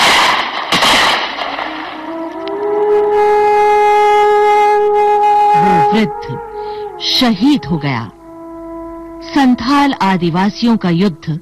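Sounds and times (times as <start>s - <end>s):
burst of gunfire in a battle of a tribal uprising: 0.0s - 2.0s
sustained rising harmonic tone: 1.4s - 11.4s
speech: 7.2s - 8.2s, 9.3s - 11.4s.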